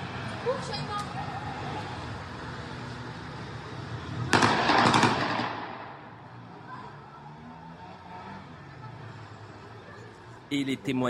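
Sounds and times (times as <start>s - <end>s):
speech: 0.4s - 1.3s, 10.5s - 11.0s
rapid gunshots from heavy weapons in a street at night: 4.3s - 5.8s.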